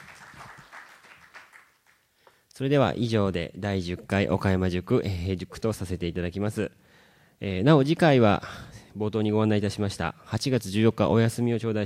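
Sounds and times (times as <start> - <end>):
audience applause at the close of a public lecture: 0.0 - 2.0
speech: 2.6 - 6.8, 7.4 - 11.8.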